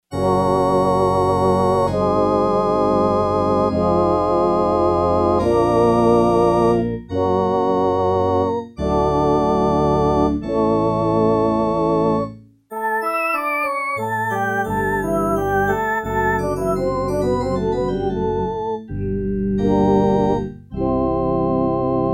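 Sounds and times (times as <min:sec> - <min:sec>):
Yamaha TX802 organ choir performance: 0:00.1 - 0:22.1.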